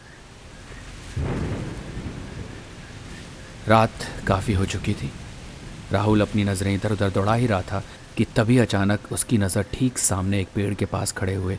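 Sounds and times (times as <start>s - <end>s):
heavy rain pouring: 0.0s - 11.5s
deep rumble of thunder: 0.8s - 9.8s
speech: 3.7s - 5.2s, 5.9s - 11.5s.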